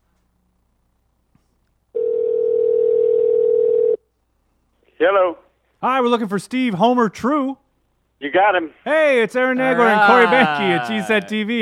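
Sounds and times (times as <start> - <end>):
electronic ring tone of an outgoing phone call: 2.0 - 4.0
speech: 5.0 - 7.6, 8.2 - 11.6
laughter: 9.5 - 11.6.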